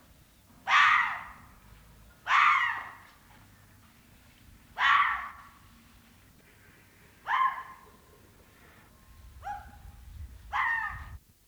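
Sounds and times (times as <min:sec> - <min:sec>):
Japanese red fox calling: 0:00.6 - 0:01.5, 0:02.2 - 0:03.1, 0:04.8 - 0:05.6, 0:06.4 - 0:11.2.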